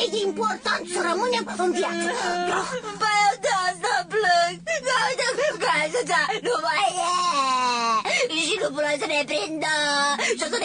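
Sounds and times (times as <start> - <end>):
low steady hum: 0.0 - 10.6
speech: 0.2 - 10.6
person whimpering and crying: 1.4 - 4.0, 4.6 - 8.3.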